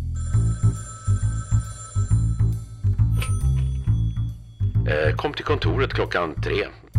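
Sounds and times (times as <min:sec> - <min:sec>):
telephone ringing with buzzy tonal pulses: 0:00.0 - 0:04.5
speech: 0:04.9 - 0:06.8.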